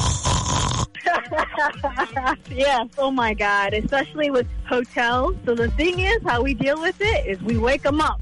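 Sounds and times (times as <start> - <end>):
person imitating loud rasping snoring: 0.0 - 1.0
laughter: 1.0 - 2.5
speech: 1.3 - 8.2.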